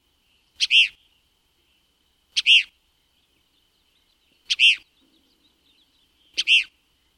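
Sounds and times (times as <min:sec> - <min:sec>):
Cassin's kingbird harsh burry two-part calls: 0:00.6 - 0:01.1, 0:02.3 - 0:02.8, 0:04.4 - 0:06.8.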